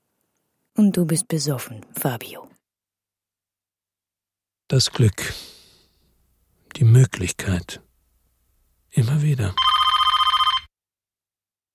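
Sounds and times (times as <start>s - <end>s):
speech: 0.8s - 2.5s, 4.7s - 5.6s, 6.8s - 7.8s, 8.9s - 9.7s
telephone bell ringing: 9.6s - 10.7s.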